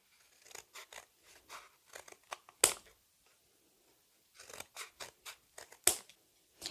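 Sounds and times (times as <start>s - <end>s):
scissors cutting cardboard tube into strips: 0.0s - 3.0s, 4.3s - 6.1s.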